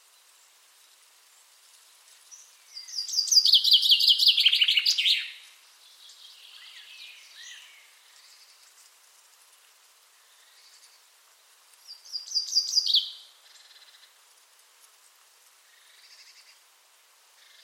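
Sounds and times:
Common chaffinch song with descending trill and rattling phrase: 0.0s - 9.2s, 10.1s - 14.2s
faint chirps: 0.0s - 9.4s, 10.0s - 14.2s, 15.6s - 16.7s.

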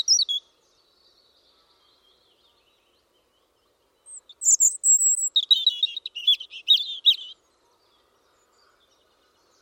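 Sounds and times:
European robin singing whistles and twittering trills: 0.0s - 7.5s.

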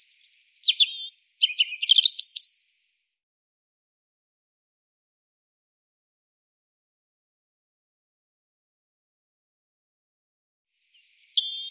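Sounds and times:
European robin singing: 0.0s - 2.8s, 10.9s - 11.6s.

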